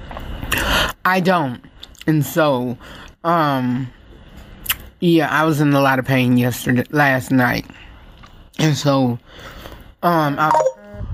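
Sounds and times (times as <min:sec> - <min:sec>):
speech: 0:01.0 - 0:04.0, 0:05.0 - 0:07.8, 0:08.6 - 0:10.7
phone tones going off beside a microphone: 0:10.4 - 0:11.1.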